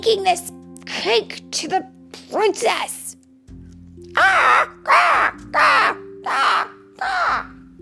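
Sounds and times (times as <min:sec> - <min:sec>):
speech: 0:00.0 - 0:03.0, 0:04.0 - 0:07.6
flock of birds cackling and flapping: 0:04.1 - 0:07.6.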